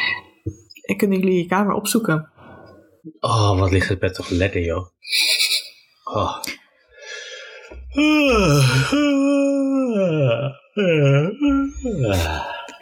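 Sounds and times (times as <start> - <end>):
speech: 0.4 - 2.3, 3.0 - 5.2, 6.1 - 6.6, 8.0 - 12.5
person yawning: 7.8 - 12.8.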